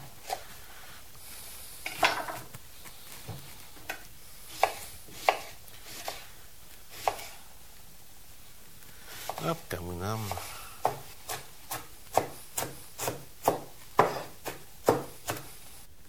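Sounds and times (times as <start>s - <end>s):
knife finely chopping chard on a cutting board: 3.9s - 6.3s, 6.9s - 7.4s, 10.2s - 15.6s
speech: 9.5s - 10.5s.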